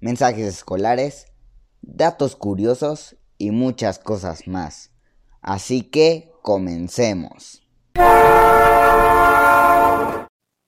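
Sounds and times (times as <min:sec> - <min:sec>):
speech: 0:00.0 - 0:08.7
train horn sounding a loud sustained steady chord: 0:08.0 - 0:10.3.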